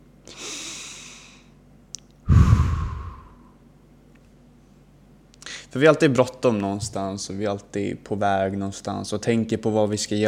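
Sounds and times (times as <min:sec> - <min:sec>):
deep breathing in a relaxation exercise: 0:00.3 - 0:01.5, 0:02.3 - 0:03.6
speech: 0:05.7 - 0:10.2.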